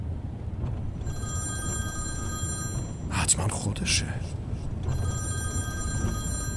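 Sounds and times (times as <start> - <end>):
low rumble: 0.0 - 6.5
telephone ringing with electronic trill: 1.0 - 3.4, 4.6 - 6.5
speech: 3.3 - 5.1.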